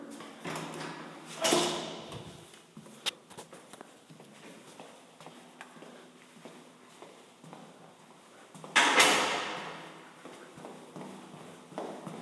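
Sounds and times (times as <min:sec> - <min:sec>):
building door on the main floor opening and closing: 0:00.5 - 0:02.4
light footsteps: 0:02.1 - 0:08.8, 0:09.6 - 0:12.2.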